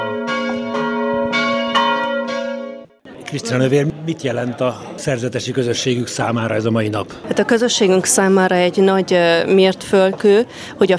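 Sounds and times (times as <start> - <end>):
church bells ringing to call to mass: 0.0 - 3.0
speech: 3.3 - 10.9.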